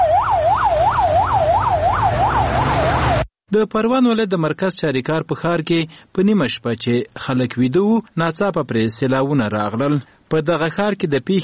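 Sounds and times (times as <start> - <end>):
ambulance siren yelping: 0.0 - 3.3
speech: 3.5 - 11.4.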